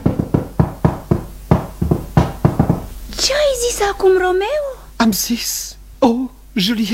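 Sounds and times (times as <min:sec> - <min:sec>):
rhythmic tapping imitating a telegraph dispatch: 0:00.0 - 0:03.0
speech: 0:03.2 - 0:06.9.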